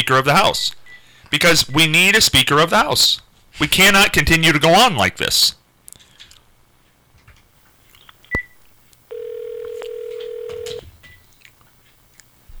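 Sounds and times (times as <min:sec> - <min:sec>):
speech: 0:00.1 - 0:05.6
telephone click while dialing: 0:08.4 - 0:11.6.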